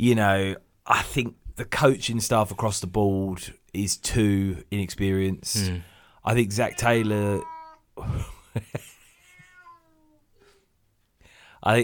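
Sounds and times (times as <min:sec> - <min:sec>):
speech: 0:00.0 - 0:08.9, 0:11.6 - 0:11.8
cat meowing: 0:06.6 - 0:07.9, 0:09.0 - 0:10.3.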